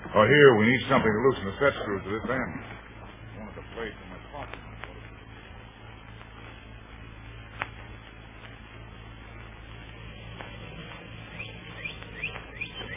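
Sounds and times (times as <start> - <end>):
steady low electrical hum: 0.0 - 12.9
speech: 0.2 - 2.8
birds chirping at dawn: 10.5 - 12.9.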